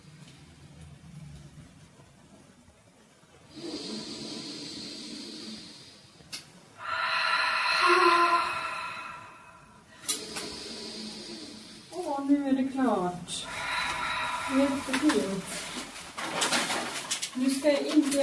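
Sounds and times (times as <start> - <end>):
deep heavy breathing: 3.5 - 17.0.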